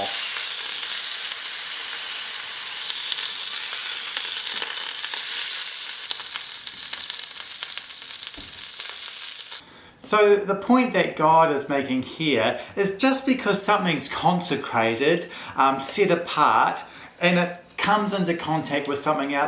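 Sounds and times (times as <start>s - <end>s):
steak sizzling in a hot frying pan: 0.0s - 9.6s
speech: 10.1s - 19.4s.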